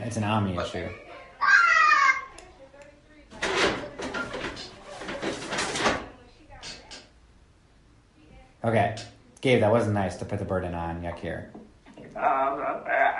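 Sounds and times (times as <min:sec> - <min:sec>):
speech: 0:00.1 - 0:01.1, 0:08.6 - 0:11.6, 0:12.2 - 0:13.1
toddler whiny crying: 0:01.4 - 0:02.3
clattering: 0:03.3 - 0:07.0.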